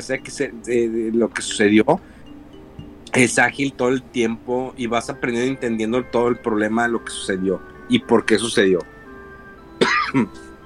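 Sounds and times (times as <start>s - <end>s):
speech: 0.0s - 2.2s, 3.1s - 8.9s, 9.8s - 10.4s
person coughing: 9.8s - 10.4s.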